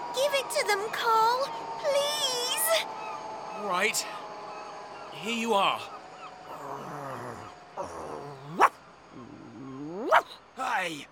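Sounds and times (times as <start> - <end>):
speech: 0.4 - 3.0, 3.6 - 4.4, 5.2 - 6.0, 10.1 - 11.1
dog whining and growling: 6.5 - 10.3
dog barking: 8.5 - 8.7, 10.0 - 10.4.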